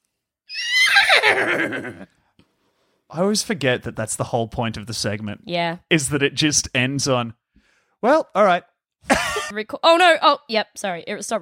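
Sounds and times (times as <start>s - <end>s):
horse whinnying: 0.5s - 2.1s
speech: 1.3s - 2.2s, 3.1s - 7.4s, 8.0s - 11.3s.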